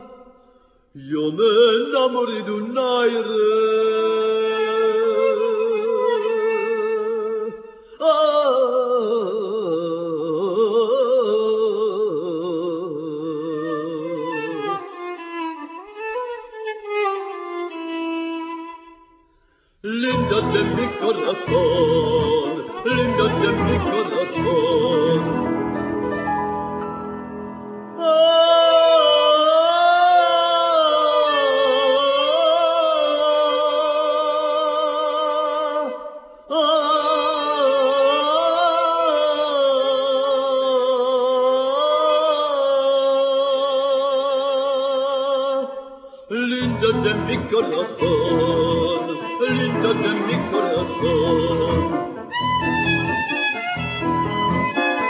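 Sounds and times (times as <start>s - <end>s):
nigun wordless melody singing: 0.0s - 55.0s.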